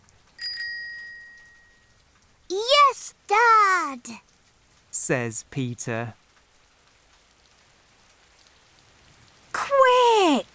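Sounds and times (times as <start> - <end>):
bright bell ringing: 0.4 - 1.9
speech: 2.5 - 4.2, 5.1 - 6.2.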